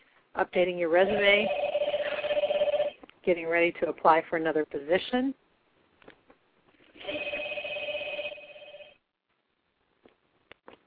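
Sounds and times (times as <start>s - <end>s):
speech: 0.4s - 1.6s, 3.2s - 5.4s
home telephone ringing with an electronic trill: 0.9s - 3.0s, 7.0s - 9.0s.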